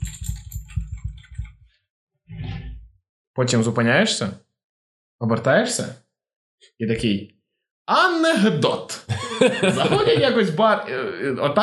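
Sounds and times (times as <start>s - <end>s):
computer keyboard typing: 0.0s - 1.6s
speech: 3.4s - 4.5s, 5.2s - 6.0s, 6.6s - 11.6s
laughter: 9.1s - 11.3s.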